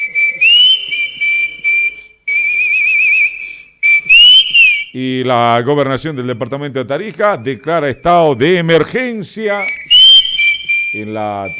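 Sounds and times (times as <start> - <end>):
person whistling a melody with a warbling trill: 0.0 - 5.0, 7.3 - 11.5
speech: 5.0 - 9.9, 10.9 - 11.5.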